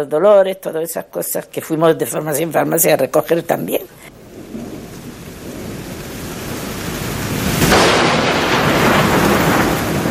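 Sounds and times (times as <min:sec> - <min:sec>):
speech: 0:00.0 - 0:04.1
deep rumble of thunder: 0:01.6 - 0:10.0
steady heavy rain: 0:01.6 - 0:10.0.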